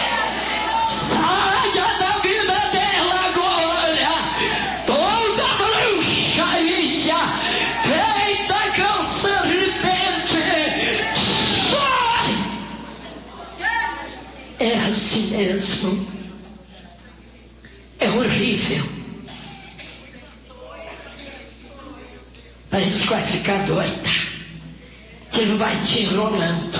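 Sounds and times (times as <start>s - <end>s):
church audience shouting and yelling: 0.0s - 14.9s
speech: 15.3s - 16.1s, 22.8s - 24.1s, 25.4s - 26.7s.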